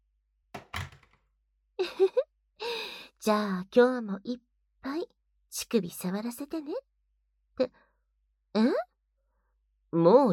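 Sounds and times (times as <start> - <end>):
door shut with dull solid thuds: 0.6 - 1.2
latch catching with a short rattling clatter: 0.6 - 1.2
speech: 1.8 - 2.3, 3.2 - 6.9, 7.6 - 7.8, 8.5 - 8.9, 9.9 - 10.3.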